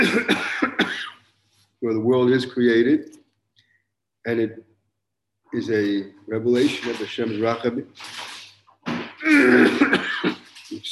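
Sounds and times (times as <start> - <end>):
person clearing throat and coughing: 0.0 - 1.2, 9.2 - 10.5
speech: 1.8 - 3.2, 4.2 - 4.7, 5.5 - 8.3, 9.4 - 10.9.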